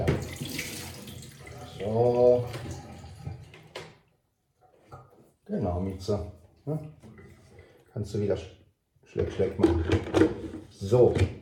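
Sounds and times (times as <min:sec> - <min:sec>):
leftover water poured into a sink: 0:00.0 - 0:03.7
speech: 0:05.9 - 0:07.0, 0:08.0 - 0:08.6, 0:09.2 - 0:11.4.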